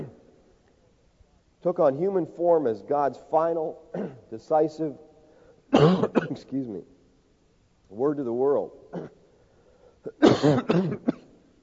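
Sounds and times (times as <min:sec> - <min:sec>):
speech: 0:01.6 - 0:05.0, 0:05.7 - 0:06.9, 0:07.9 - 0:09.2, 0:10.0 - 0:11.2
person coughing from communion bread stuck in the throat: 0:03.9 - 0:04.3, 0:05.7 - 0:06.4, 0:08.9 - 0:09.2, 0:10.1 - 0:11.4.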